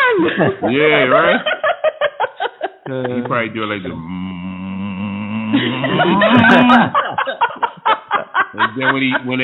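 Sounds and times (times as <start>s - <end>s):
laughter: 0.1s - 4.4s, 5.1s - 9.4s
speech: 0.3s - 1.5s, 2.9s - 4.2s, 5.5s - 7.0s, 8.6s - 9.4s
short breathy vocal bursts: 3.9s - 6.8s
person imitating a groan: 3.9s - 6.9s.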